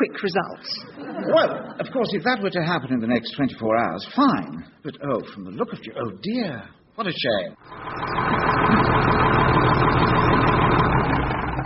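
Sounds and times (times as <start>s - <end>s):
speech: 0.0s - 9.1s
tractor engine idling: 7.6s - 11.6s.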